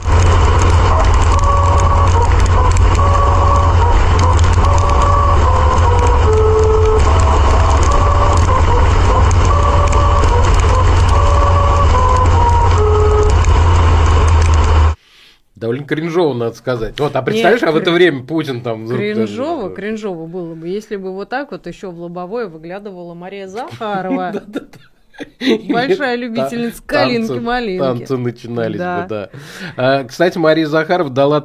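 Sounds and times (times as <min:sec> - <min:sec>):
car tires and engine rumbling on a musical road: 0:00.0 - 0:15.0
speech: 0:15.9 - 0:31.4
laughter: 0:17.4 - 0:18.1, 0:23.6 - 0:27.2.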